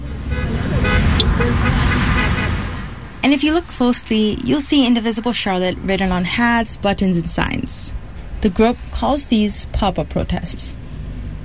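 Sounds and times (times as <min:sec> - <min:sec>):
car horns honking in rush-hour traffic: 0:00.0 - 0:07.6
idling and passing rush-hour traffic backed up at a traffic light near a gas station: 0:00.0 - 0:11.4
speech: 0:03.2 - 0:10.8.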